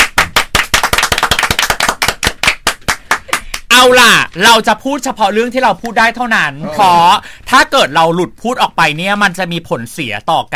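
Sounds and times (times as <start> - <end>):
several people clapping hands: 0.0 - 3.9
speech: 3.8 - 10.5.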